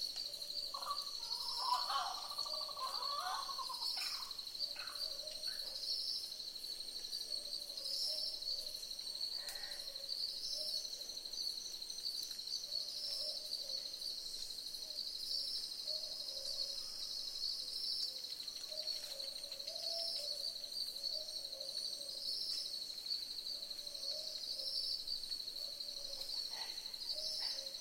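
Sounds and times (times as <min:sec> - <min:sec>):
loud continuous high-pitched insect chorus: 0:00.0 - 0:27.7
several boobook owls giving low double hoots: 0:00.7 - 0:05.3.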